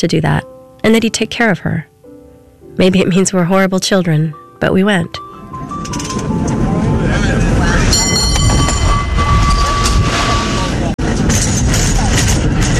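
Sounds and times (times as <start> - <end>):
speech: 0.0 - 1.9, 2.8 - 6.6
cable car rumbling and rattling along its rails: 5.6 - 12.7
voices: 6.4 - 12.7
high metallic squeal of a cable car: 7.4 - 10.9.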